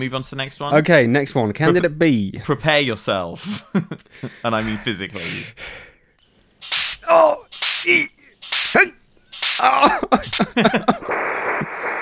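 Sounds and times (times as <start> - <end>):
speech: 0.0 - 5.9, 7.1 - 9.0, 9.6 - 11.7
laughter: 3.4 - 5.3, 9.6 - 11.1
whip cracks: 6.6 - 10.5
steady hiss: 6.6 - 12.0.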